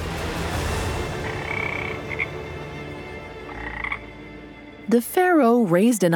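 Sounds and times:
frog croaking: 1.2s - 2.4s, 3.3s - 4.3s
speech: 4.9s - 6.1s.

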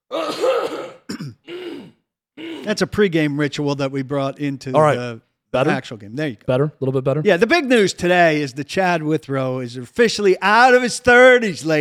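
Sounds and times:
person clearing throat roughly: 0.1s - 2.8s
person coughing with rasping hacking coughs: 0.1s - 2.8s
speech: 2.6s - 11.8s.

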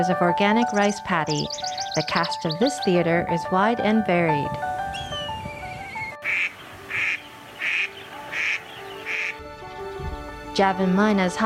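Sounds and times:
speech: 0.0s - 4.8s, 10.6s - 11.4s
faint birds chirping: 0.5s - 3.1s, 4.8s - 9.5s
Indian spot-billed duck quacking in an organic rice paddy: 6.2s - 9.4s.

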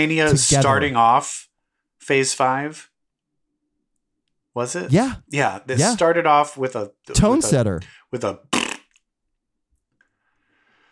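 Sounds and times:
speech: 0.0s - 1.5s, 2.1s - 2.9s, 4.6s - 8.6s
fart: 8.5s - 9.0s.

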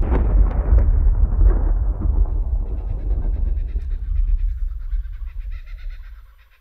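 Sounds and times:
deep rolling thunder: 0.0s - 6.5s
small birds chirping: 2.2s - 6.5s.

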